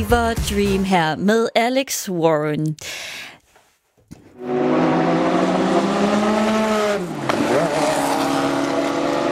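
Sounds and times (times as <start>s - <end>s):
speech: 0.0s - 3.3s, 4.4s - 5.2s
race car engines roaring at a 24-hour endurance race at Le Mans: 4.4s - 9.3s
race car tire noise: 4.4s - 9.3s.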